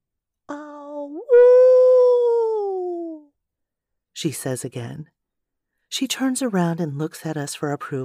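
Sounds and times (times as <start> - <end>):
woman howling in a meadow: 0.5 - 3.3
speech: 4.2 - 5.2, 5.9 - 8.0.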